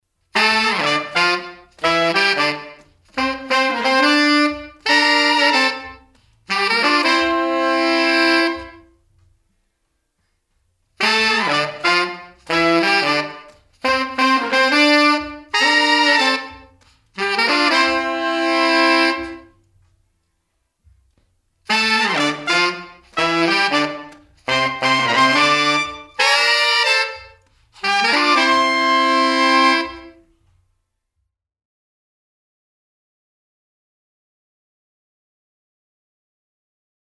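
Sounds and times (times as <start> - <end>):
horn section playing with room reverb: 0.3 - 9.0, 11.0 - 19.6, 21.7 - 30.3.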